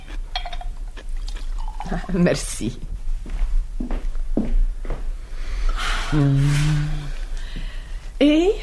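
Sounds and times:
low steady hum: 0:00.0 - 0:08.6
liquid pouring into a glass: 0:00.4 - 0:02.2
speech: 0:01.9 - 0:02.9, 0:06.1 - 0:07.0.

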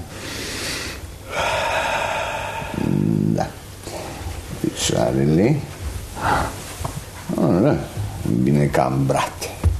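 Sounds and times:
deep breath drawn in on command: 0:00.2 - 0:03.3
speech: 0:04.9 - 0:05.7, 0:07.7 - 0:09.6.

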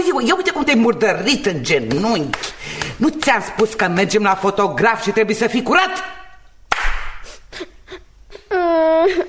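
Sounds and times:
speech: 0:00.0 - 0:06.2
child crying and whimpering: 0:07.4 - 0:09.2.

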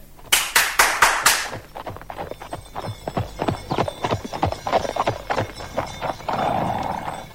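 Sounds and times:
horse-drawn carriage hooves clip-clopping: 0:00.0 - 0:07.3
soft rumble of carriage wheels: 0:01.6 - 0:07.3.

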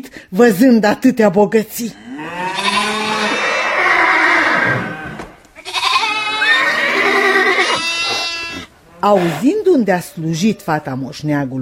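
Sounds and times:
speech: 0:00.0 - 0:02.1, 0:09.0 - 0:11.5
sheep and livestock bleating: 0:02.0 - 0:09.5.

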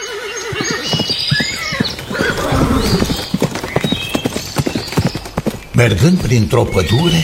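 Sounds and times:
horse neighing: 0:00.0 - 0:03.4
galloping hooves of a horse with rider: 0:00.0 - 0:07.2
speech: 0:05.8 - 0:07.2.

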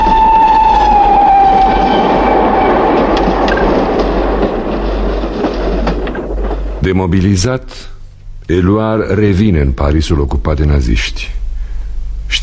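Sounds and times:
train horn: 0:00.0 - 0:03.7
train wheels roaring on rails: 0:00.0 - 0:06.9
speech: 0:07.0 - 0:11.4.

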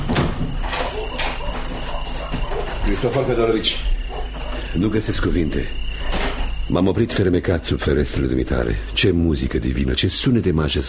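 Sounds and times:
door being opened: 0:00.0 - 0:04.6, 0:06.0 - 0:07.3
steady low noise: 0:00.0 - 0:10.8
speech: 0:02.9 - 0:04.0, 0:04.7 - 0:05.9, 0:06.7 - 0:10.8.

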